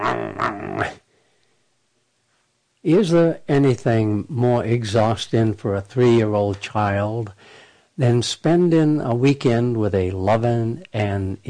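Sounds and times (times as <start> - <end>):
human voice growling: 0.0 - 1.1
speech: 0.2 - 1.0, 2.8 - 11.4.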